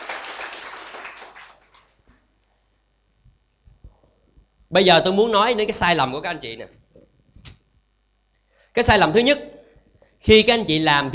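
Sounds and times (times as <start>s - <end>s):
audience applause in a hall during a business seminar for distributors: 0.0s - 1.9s
speech: 4.7s - 6.8s, 8.8s - 9.5s, 10.2s - 11.1s.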